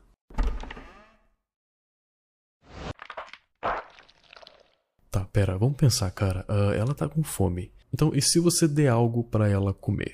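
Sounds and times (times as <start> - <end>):
door opening with a loud thunk and brief creak: 0.3 - 1.0
speech: 5.4 - 10.1.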